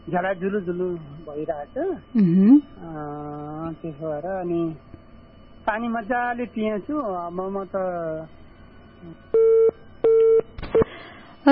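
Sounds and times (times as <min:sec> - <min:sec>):
speech: 0:00.1 - 0:04.9, 0:05.6 - 0:08.4, 0:09.0 - 0:09.5
telephone busy tone after a call was cut off: 0:09.3 - 0:10.9.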